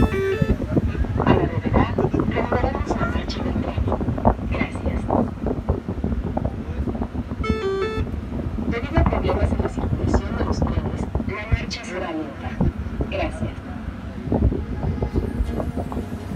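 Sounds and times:
people talking: 0.0s - 5.2s, 8.7s - 16.3s
Mexico City metro train rumbling clatter: 0.0s - 16.3s.

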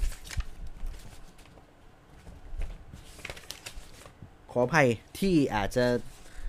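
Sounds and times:
contract document pages rustling and being turned: 0.0s - 4.2s
speech: 4.5s - 6.1s.

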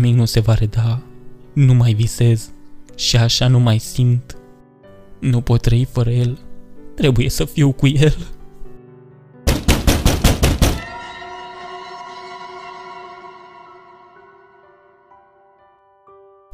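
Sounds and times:
speech: 0.0s - 4.4s, 5.2s - 6.4s, 7.0s - 8.4s
loud sharp knocks on a door: 9.5s - 10.8s
sustained ringing tone: 10.8s - 15.7s.

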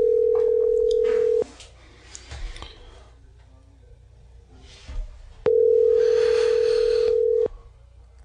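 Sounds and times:
phone ringback tone: 0.0s - 1.4s, 5.5s - 7.5s.

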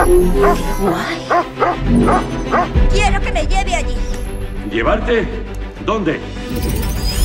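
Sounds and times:
dog barking in sharp yips: 0.0s - 2.8s
speech: 0.1s - 7.1s.

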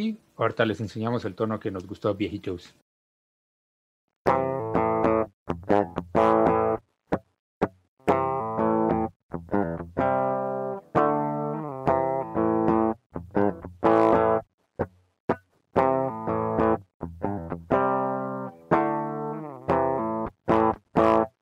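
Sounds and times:
speech: 0.0s - 2.8s, 5.5s - 6.4s
electric guitar rock riff recorded dry through a direct DI input: 4.3s - 7.2s, 8.0s - 14.9s, 15.8s - 21.3s.

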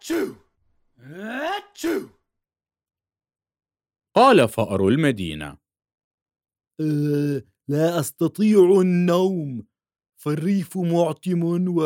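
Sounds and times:
voice imitating a mouse sneezing: 0.0s - 0.4s, 1.0s - 2.2s
speech: 0.1s - 0.4s, 1.0s - 2.2s, 4.2s - 5.6s, 6.8s - 11.8s.

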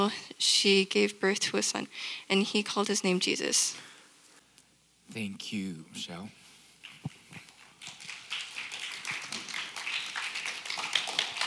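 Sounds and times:
speech: 0.0s - 3.9s, 5.1s - 6.4s
audience applauding: 6.9s - 11.4s.

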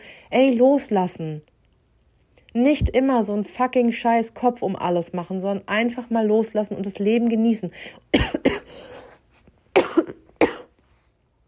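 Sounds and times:
speech: 0.3s - 1.5s, 2.6s - 8.8s
person in a loud coughing fit: 8.1s - 10.8s.

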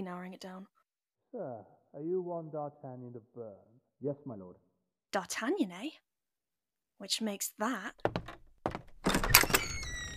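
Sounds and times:
speech: 0.0s - 6.1s, 7.0s - 8.2s
door creaking as it swings: 8.0s - 10.1s
door latch thunk: 9.0s - 10.1s.

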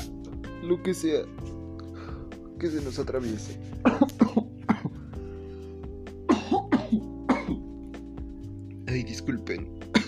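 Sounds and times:
speech: 0.6s - 1.5s, 2.6s - 4.2s, 8.9s - 10.0s
harsh coughing: 3.8s - 5.0s, 6.3s - 7.7s.

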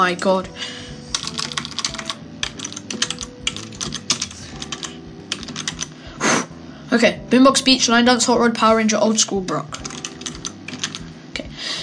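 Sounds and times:
speech: 0.0s - 0.8s, 6.9s - 9.9s
typing answers on a computer keyboard: 1.1s - 5.9s, 9.1s - 11.1s.

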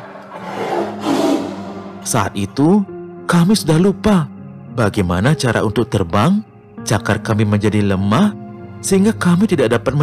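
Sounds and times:
hungry tiger roaring as it attacks on an island: 0.0s - 2.0s
speech: 2.1s - 10.0s.

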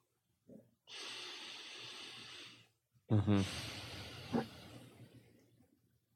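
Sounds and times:
deep breath in and out: 0.9s - 5.2s.

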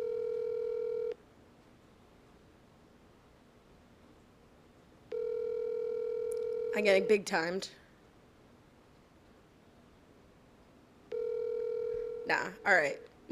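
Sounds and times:
phone ringback tone: 0.0s - 1.2s, 5.1s - 7.1s, 11.1s - 12.6s
speech: 6.8s - 7.8s, 12.7s - 13.3s.

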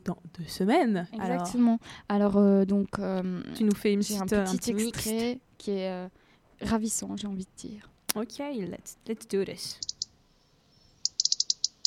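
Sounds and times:
speech: 0.1s - 9.9s
European robin chirping: 9.7s - 11.8s.

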